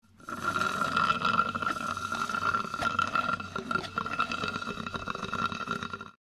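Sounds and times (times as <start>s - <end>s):
person drinking through a straw slurping: 0.0s - 6.2s.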